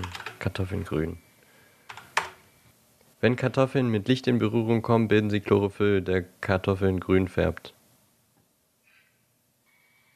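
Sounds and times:
typing on a laptop keyboard: 0.0 - 0.4, 1.9 - 2.4
speech: 0.4 - 1.3, 3.2 - 7.8.

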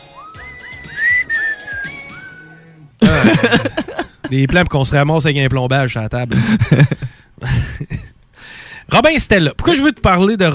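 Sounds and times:
person whistling a short wavering tune: 0.0 - 2.6
laughter: 3.0 - 4.5
speech: 3.2 - 3.7, 4.3 - 7.0, 9.0 - 10.5.

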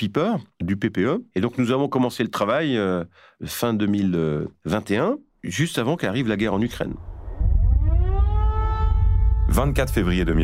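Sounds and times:
speech: 0.0 - 7.1, 9.6 - 10.4
heavy low rumble of city or wind noise: 6.5 - 10.4
air raid siren winding up to a high wail: 7.0 - 10.4.

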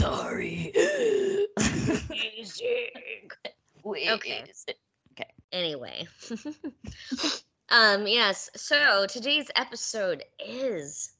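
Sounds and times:
brief vocal noises and soft breathy catches: 0.0 - 2.2, 6.3 - 7.4
rough coughing burst: 0.0 - 2.2
throat clearing after laughing: 0.8 - 2.1
speech: 1.6 - 11.1.

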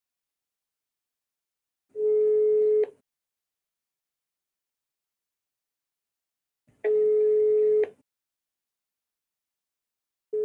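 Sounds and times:
ringback tones of an outgoing phone call: 2.0 - 2.9, 6.9 - 8.0.

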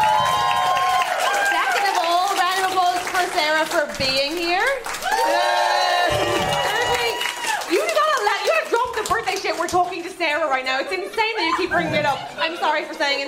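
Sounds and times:
audience cheering with whoops and excited voices: 0.0 - 2.4, 4.9 - 8.5
loud audience applause: 0.0 - 10.0
speech: 3.4 - 5.4, 9.2 - 13.2
laughter: 10.6 - 13.2.

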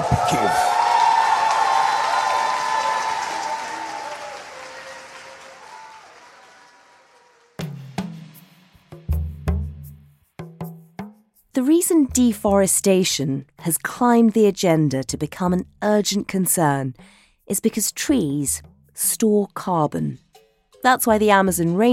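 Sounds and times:
large crowd applauding and cheering for a speech: 0.0 - 8.0
speech: 0.3 - 0.7, 11.6 - 20.2, 20.8 - 21.9.

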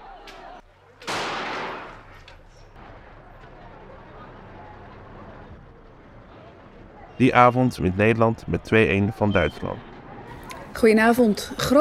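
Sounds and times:
faint gunshot cracks: 0.2 - 7.1
steady low rumble of outdoor noise: 0.6 - 11.7
booming gunshot: 1.1 - 2.1
speech: 7.2 - 9.9, 10.8 - 11.7.

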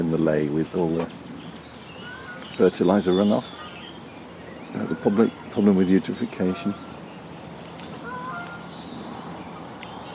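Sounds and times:
faint birdsong in open countryside: 0.0 - 10.1
steady outdoor hum: 0.0 - 10.1
speech: 0.1 - 1.2, 2.6 - 3.6, 4.7 - 6.9
bird chirps and short whistled notes in open countryside: 1.3 - 10.1.

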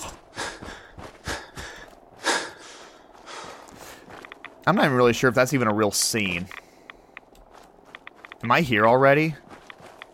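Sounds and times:
person imitating shaky frightened breathing: 0.0 - 4.2
speech: 4.7 - 6.6, 8.5 - 9.4.

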